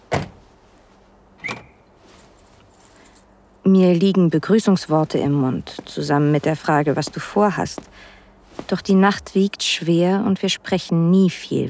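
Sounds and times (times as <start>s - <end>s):
limousine lock mechanical clunk: 1.4s - 1.8s
limousine lock chirp: 1.4s - 1.9s
speech: 3.7s - 11.6s.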